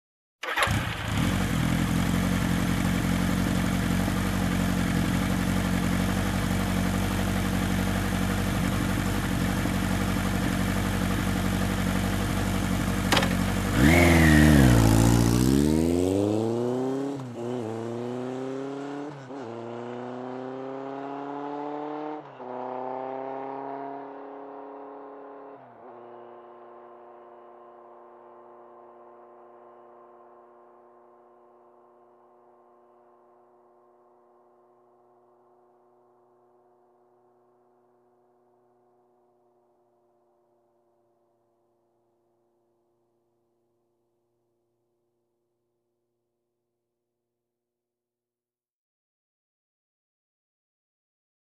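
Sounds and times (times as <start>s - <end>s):
sportbike engine starting and driving away: 0.4s - 40.8s.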